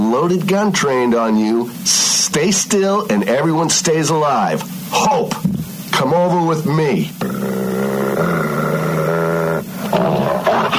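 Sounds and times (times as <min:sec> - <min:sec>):
speech: 0:00.2 - 0:08.5
werewolf roaring and snarling: 0:07.2 - 0:10.7.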